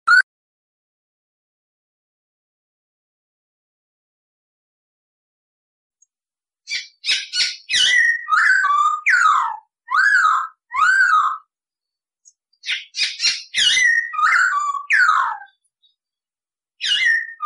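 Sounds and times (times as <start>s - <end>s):
masked laughingthrush giving loud swooping whistled notes: 6.7s - 11.4s, 12.6s - 15.6s, 16.8s - 17.4s.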